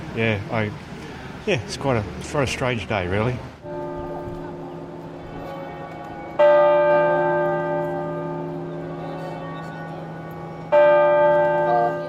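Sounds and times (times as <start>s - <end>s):
speech: 0.2s - 0.9s, 1.5s - 3.6s
deep church bell tolling: 3.6s - 12.0s.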